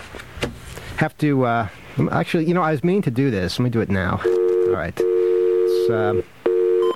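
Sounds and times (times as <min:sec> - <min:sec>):
speech: 0:01.0 - 0:05.1, 0:05.9 - 0:06.4
telephone dial tone: 0:04.2 - 0:06.9.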